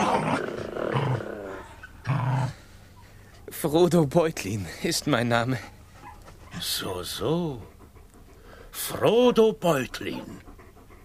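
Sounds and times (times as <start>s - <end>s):
dogs growling: 0.0s - 3.0s, 5.5s - 11.0s
speech: 3.6s - 5.7s, 6.6s - 7.7s, 8.7s - 10.5s.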